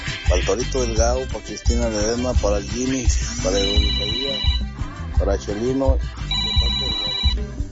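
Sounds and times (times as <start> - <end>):
speech: 0.3 - 6.2
mobile phone ringtone with a melodic tune over a thumping beat: 3.4 - 4.7, 6.3 - 7.4.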